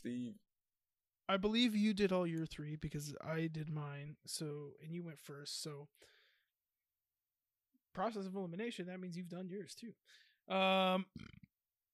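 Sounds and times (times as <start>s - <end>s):
speech: 0.0s - 0.4s, 1.3s - 6.2s, 8.0s - 11.5s
loud drawn-out burp: 11.0s - 11.5s.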